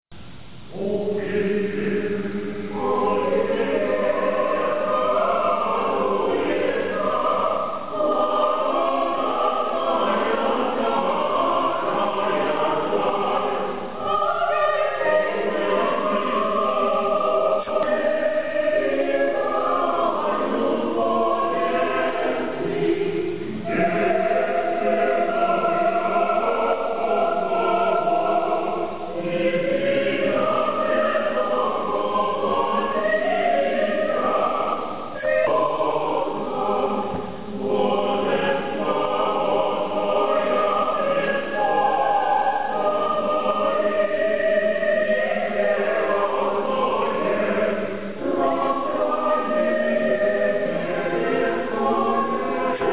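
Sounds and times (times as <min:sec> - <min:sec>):
choir singing in Moscow: 0:00.7 - 0:52.9.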